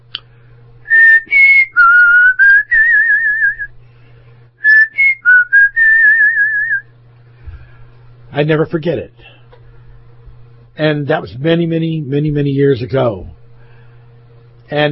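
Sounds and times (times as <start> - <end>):
faint low hum: 0.0 - 14.9
person whistling a tune while walking on a gravel road: 0.9 - 3.7, 4.6 - 6.8
speech: 8.4 - 9.4, 10.8 - 13.4, 14.7 - 14.9.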